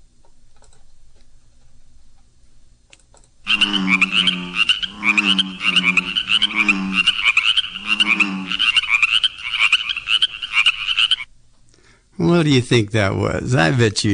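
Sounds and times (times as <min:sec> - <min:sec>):
bullfrogs croaking: 0:03.5 - 0:11.3
chorus frogs trilling high rapid peeps: 0:03.5 - 0:11.3
speech: 0:12.5 - 0:14.1.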